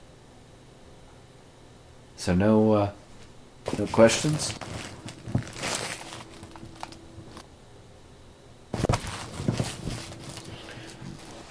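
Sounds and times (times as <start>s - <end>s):
speech: 2.2s - 3.0s, 3.7s - 4.8s
chip bag wrapper crinkling as the bag is opened: 3.7s - 7.4s, 8.8s - 11.5s.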